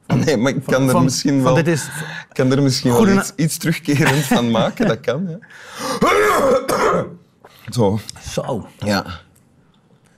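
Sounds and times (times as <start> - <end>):
speech: 0.2 - 9.2
laughter: 3.9 - 5.0
loud rough throat-clearing cough: 5.9 - 7.2.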